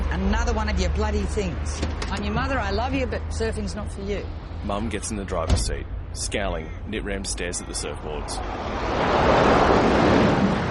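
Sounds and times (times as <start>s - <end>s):
speech: 0.2s - 10.6s
large ocean waves crashing where surfers are paddling out: 8.4s - 10.6s.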